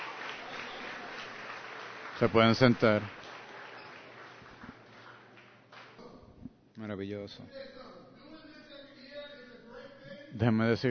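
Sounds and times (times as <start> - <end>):
graduation crowd applauding graduates: 0.0 - 6.0
speech: 2.2 - 3.3, 6.8 - 7.8, 10.4 - 10.9.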